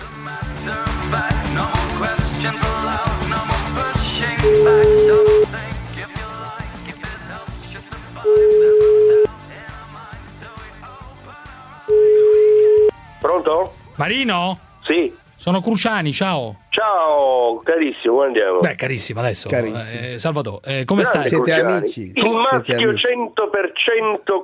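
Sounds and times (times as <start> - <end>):
busy music: 0.0 - 23.2
speech: 0.6 - 3.5, 4.2 - 5.2, 13.4 - 24.4
telephone tones while a call is being placed: 4.4 - 5.5, 8.3 - 9.3, 11.9 - 13.0.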